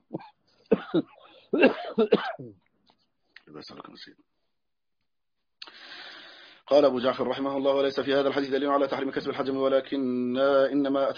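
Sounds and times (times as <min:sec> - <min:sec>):
person coughing: 0:00.0 - 0:02.6
speech: 0:00.9 - 0:02.6, 0:03.5 - 0:04.3, 0:06.7 - 0:11.1.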